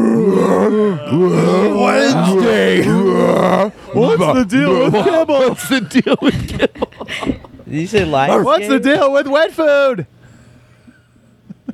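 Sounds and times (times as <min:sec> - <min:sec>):
person imitating a dog almost talking with groaning vocal sound: 0:00.0 - 0:05.0
laughter: 0:00.5 - 0:09.6
speech: 0:00.7 - 0:10.2.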